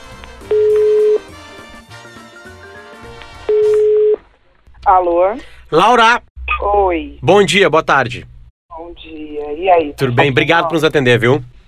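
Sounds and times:
telephone ringing tones while a call is being placed: 0.5 - 1.3, 3.5 - 4.2
speech: 4.9 - 8.3, 8.9 - 11.6.

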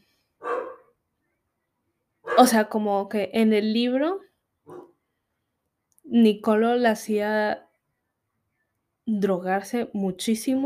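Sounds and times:
loud dog bark: 0.4 - 1.0, 2.2 - 2.6, 4.6 - 5.0
speech: 2.4 - 4.3, 6.1 - 7.6, 9.1 - 10.6.

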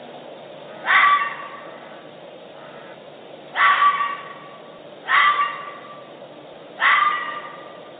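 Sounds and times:
steady background hiss: 0.0 - 7.9
bobcat giving short harsh yowling calls: 0.7 - 2.0, 3.5 - 6.1, 6.8 - 7.8.

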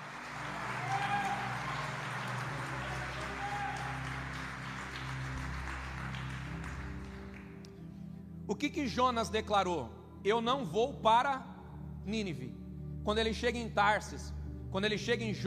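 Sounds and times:
audience applauding in a reverberant hall: 0.0 - 7.6
speech: 8.5 - 15.4.

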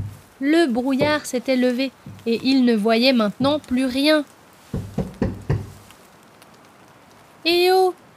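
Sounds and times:
dull knocks on tree trunks: 0.0 - 0.3, 0.9 - 2.6, 3.4 - 3.8, 4.7 - 5.9
speech: 0.4 - 4.4.

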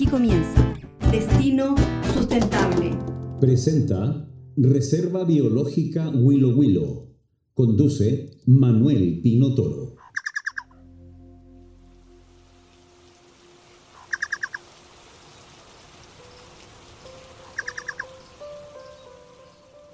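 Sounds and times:
speech: 0.1 - 10.0
chucao tapaculo chattering call: 10.0 - 10.7, 14.0 - 14.6, 17.4 - 19.1.

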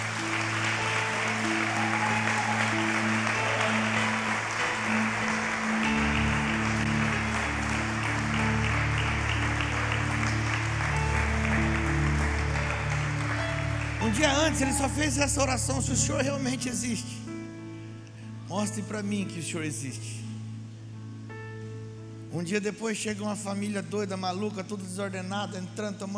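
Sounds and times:
crowd applauding: 0.0 - 16.8
sustained keyboard chords: 0.0 - 26.0
speech: 14.1 - 17.3, 18.6 - 20.2, 22.3 - 26.1.

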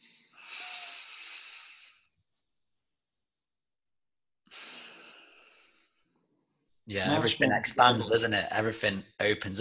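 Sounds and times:
deep breath in through the nose: 0.0 - 2.2, 4.5 - 6.1
speech: 6.9 - 9.5.

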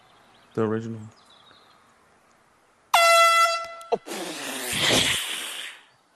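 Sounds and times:
speech: 0.6 - 1.2
air horn blaring: 2.9 - 4.0.

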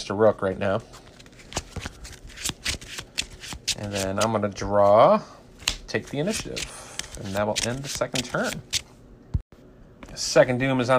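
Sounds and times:
speech: 0.0 - 1.1, 3.8 - 8.8, 10.2 - 10.9
deck of cards shuffled during a card game: 0.9 - 4.9, 5.6 - 8.9.

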